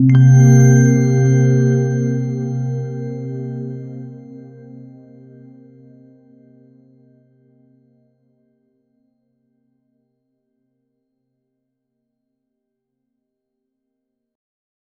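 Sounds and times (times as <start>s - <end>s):
game UI sound effect when hovering: 0.1s - 4.6s.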